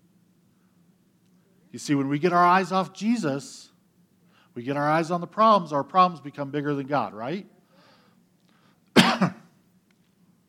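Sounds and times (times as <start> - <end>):
speech: 1.7 - 3.7, 4.6 - 7.6
person coughing: 8.9 - 9.6.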